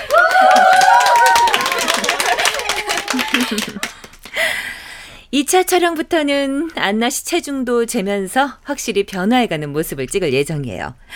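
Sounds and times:
excited voices cheering: 0:00.0 - 0:03.9
small group clapping: 0:00.0 - 0:04.6
laughter: 0:00.4 - 0:04.1
speech: 0:03.5 - 0:03.9, 0:05.4 - 0:11.1.

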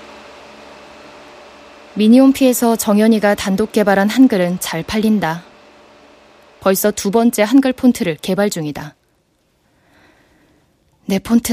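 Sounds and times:
electric fan running at a high setting: 0:00.0 - 0:09.0
speech: 0:02.0 - 0:05.5, 0:06.6 - 0:09.0, 0:11.1 - 0:11.5.

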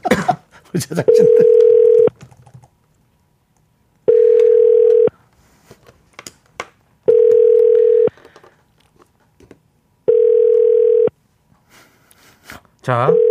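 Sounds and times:
laughter: 0:00.0 - 0:01.8
speech: 0:00.7 - 0:01.9, 0:12.9 - 0:13.2
telephone ringback tone while a call is placed: 0:01.1 - 0:02.1, 0:04.1 - 0:05.1, 0:07.1 - 0:08.1, 0:10.1 - 0:11.1, 0:13.1 - 0:13.3.

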